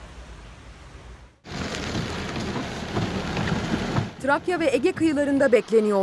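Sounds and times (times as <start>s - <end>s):
heavy rain downpour: 0.0s - 4.8s
speech: 4.2s - 6.0s.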